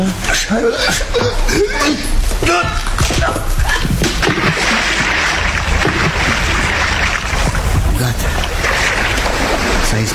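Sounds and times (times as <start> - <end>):
speech: 0.0 - 3.6
heavy body thrown splashing into bay water: 4.0 - 10.0.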